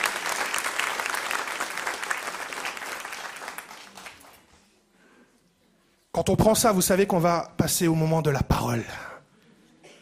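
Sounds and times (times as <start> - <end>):
audience applause: 0.0 - 4.5
speech: 6.2 - 9.1.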